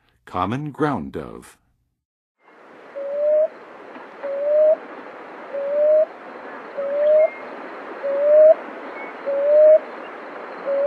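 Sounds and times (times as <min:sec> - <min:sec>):
Common Ground-Dove in the western USA: 0:02.8 - 0:10.8.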